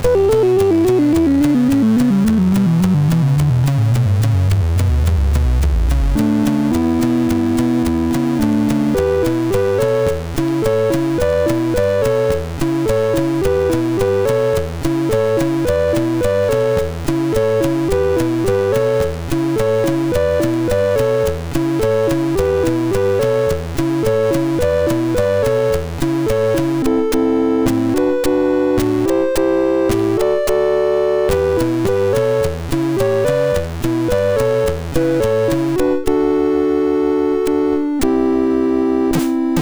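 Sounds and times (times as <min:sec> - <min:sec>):
chiptune music on a SID MOS6581R3 sound chip: 0:00.1 - 0:39.5.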